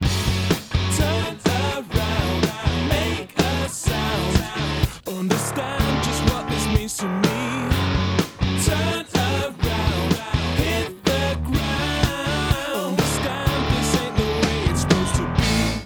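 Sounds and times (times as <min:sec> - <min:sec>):
distorted synth pad: 0:01.0 - 0:15.8.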